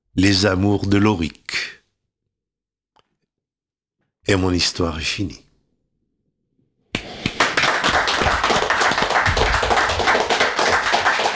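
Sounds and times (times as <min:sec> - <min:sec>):
speech: 0:00.2 - 0:01.4, 0:04.3 - 0:05.4
hands clapping: 0:07.0 - 0:11.3.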